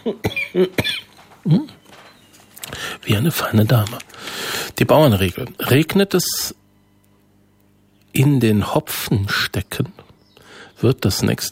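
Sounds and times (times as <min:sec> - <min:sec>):
person coughing: 0:00.0 - 0:01.6
speech: 0:00.0 - 0:01.7, 0:03.1 - 0:04.1, 0:04.8 - 0:06.6, 0:08.2 - 0:10.0, 0:10.8 - 0:11.4.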